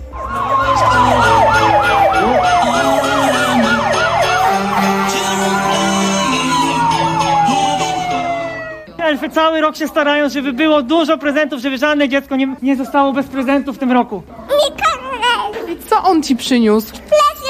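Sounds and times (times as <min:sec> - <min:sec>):
American fire truck siren wailing loudly: 0:00.0 - 0:09.0
speech: 0:09.2 - 0:14.7, 0:16.1 - 0:17.2.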